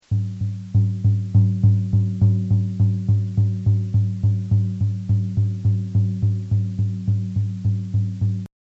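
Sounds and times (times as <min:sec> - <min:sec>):
drumming: 0:00.0 - 0:08.5.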